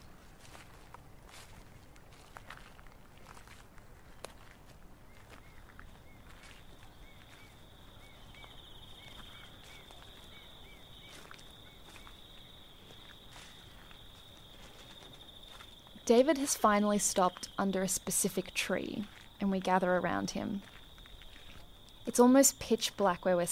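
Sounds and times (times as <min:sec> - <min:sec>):
several people's footsteps shuffling and crunching outdoors at night: 0:00.0 - 0:23.5
faint chirps: 0:05.1 - 0:15.7
speech: 0:16.1 - 0:20.8, 0:22.1 - 0:23.5.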